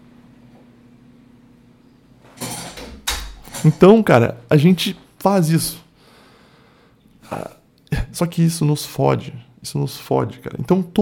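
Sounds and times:
door being pushed shut with a scraping slide: 2.3s - 3.9s
dull low thump of a door closing: 2.4s - 3.8s
speech: 3.6s - 5.8s, 7.3s - 7.6s, 8.2s - 11.0s.

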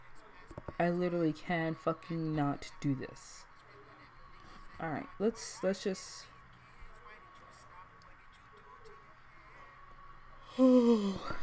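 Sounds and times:
speech: 0.8s - 3.5s, 4.8s - 6.3s, 10.6s - 11.4s
person yawning: 10.4s - 11.4s.

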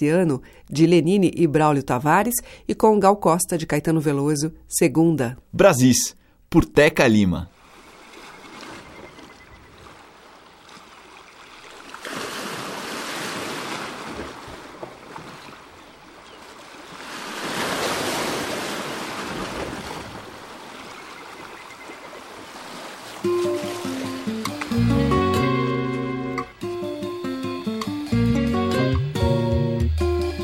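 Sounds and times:
speech: 0.0s - 7.6s
ocean waves breaking on shore: 7.5s - 26.4s
instrumental music: 23.2s - 30.4s.

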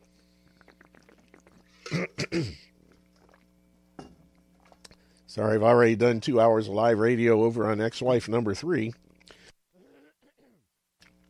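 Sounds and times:
person clearing the throat: 1.8s - 2.7s, 9.8s - 10.6s
speech: 1.9s - 2.6s, 5.4s - 9.0s.

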